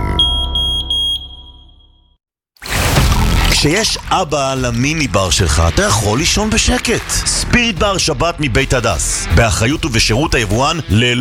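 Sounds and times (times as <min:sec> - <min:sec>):
smoke detector alarm shrilling: 0:00.0 - 0:02.2
speech: 0:03.6 - 0:11.2.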